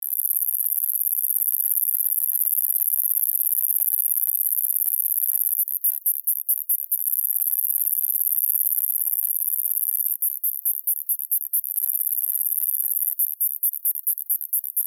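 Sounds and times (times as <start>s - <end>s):
New Zealand cicada buzzing song: 0.1s - 14.8s.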